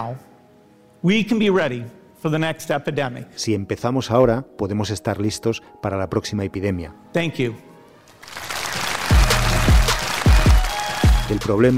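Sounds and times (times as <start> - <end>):
speech: 0.0 - 0.3, 1.0 - 8.4, 11.3 - 11.7
large conference audience applause at the end of a talk: 8.2 - 11.3.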